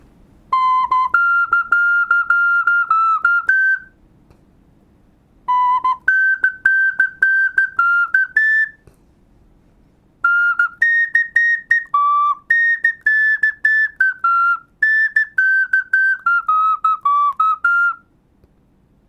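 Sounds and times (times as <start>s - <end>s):
melody on a Thai bamboo flute: 0.5s - 4.0s, 5.5s - 8.8s, 10.2s - 18.1s.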